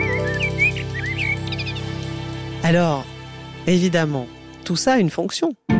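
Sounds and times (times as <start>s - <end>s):
song thrush singing: 0.0s - 4.6s
speech: 2.7s - 5.7s.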